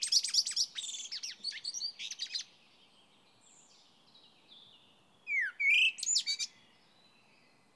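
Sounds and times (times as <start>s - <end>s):
Common blackbird Turdus merula phrase of slurred whistle and twitter: 0.0s - 2.5s, 4.5s - 7.5s.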